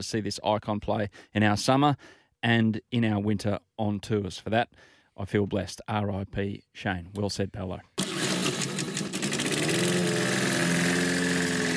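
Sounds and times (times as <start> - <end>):
speech: 0.0 - 8.0
lawn mower engine running: 8.0 - 11.7.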